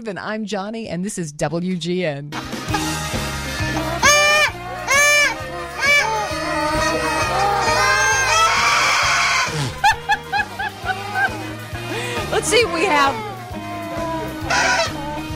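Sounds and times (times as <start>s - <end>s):
speech: 0.0s - 2.9s, 12.4s - 13.3s
laughter: 2.4s - 13.2s
comic ostrich call sound effect: 3.8s - 9.6s, 14.4s - 15.3s.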